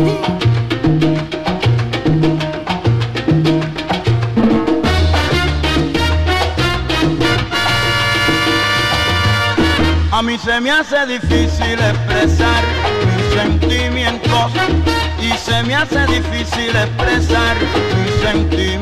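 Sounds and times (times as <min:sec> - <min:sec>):
driving salsa bass line: 0:00.0 - 0:18.8
upbeat salsa instrumental music: 0:00.0 - 0:18.8
crisp salsa percussion hits: 0:03.4 - 0:07.4
brassy salsa horns: 0:04.4 - 0:10.8, 0:11.7 - 0:18.8
speech: 0:10.4 - 0:18.8.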